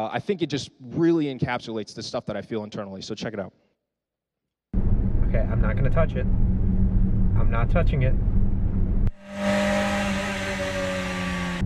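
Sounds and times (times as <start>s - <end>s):
speech: 0.0s - 3.6s, 5.3s - 6.5s, 7.4s - 8.3s
broad road noise from a car driving: 4.8s - 11.6s
car engine drone while driving: 4.8s - 11.6s.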